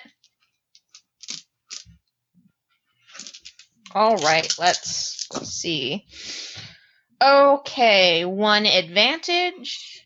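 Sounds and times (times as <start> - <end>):
pool of dice clattering across a hard tabletop: 0.8 - 2.0, 3.1 - 5.6
speech: 3.9 - 6.3, 7.2 - 10.0.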